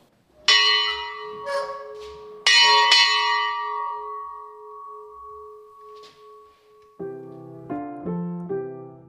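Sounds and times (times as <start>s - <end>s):
large bronze bell from 1598 struck: 0.5s - 7.1s.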